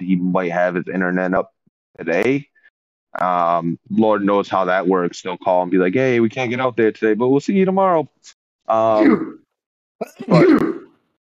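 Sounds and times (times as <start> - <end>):
speech: 0.3 - 2.5, 3.1 - 9.4, 10.0 - 10.8
sneeze: 9.0 - 9.4, 10.2 - 11.0.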